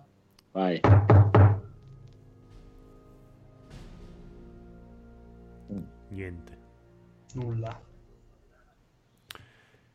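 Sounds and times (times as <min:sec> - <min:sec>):
speech: 0:00.6 - 0:01.2, 0:06.2 - 0:06.6, 0:07.3 - 0:07.9
knocking on a door: 0:00.8 - 0:01.7.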